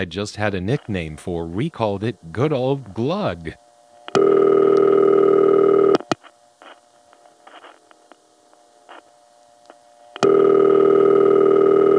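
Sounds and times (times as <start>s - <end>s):
speech: 0.0s - 3.6s
crossbar telephone ringback tone: 4.1s - 6.0s, 10.2s - 11.9s.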